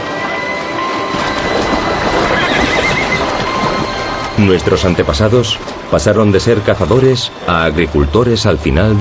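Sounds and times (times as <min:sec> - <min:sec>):
hooves clopping and shuffling: 0:00.0 - 0:08.9
horses neighing, foals separated from mares: 0:01.1 - 0:06.8
constant busy din: 0:01.1 - 0:08.9
speech: 0:04.4 - 0:08.9.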